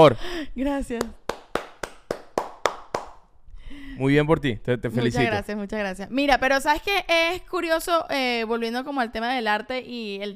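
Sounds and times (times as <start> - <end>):
speech: 0.0 - 1.2, 4.0 - 10.3
one person's hand claps: 1.0 - 3.3.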